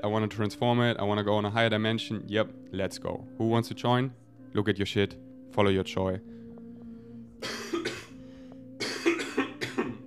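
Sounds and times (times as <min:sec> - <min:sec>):
speech: 0:00.0 - 0:06.4, 0:07.4 - 0:07.7
person clearing throat: 0:07.4 - 0:08.2, 0:08.8 - 0:10.0.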